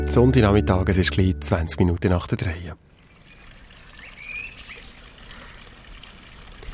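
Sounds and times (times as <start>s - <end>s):
speech: 0.2s - 2.9s
short bright bird chirps: 3.0s - 5.7s
fountain water splashing in the old town of Willisau: 3.0s - 6.7s.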